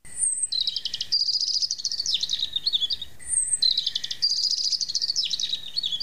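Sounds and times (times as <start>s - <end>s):
songbird singing warbling phrases: 0.0s - 6.0s.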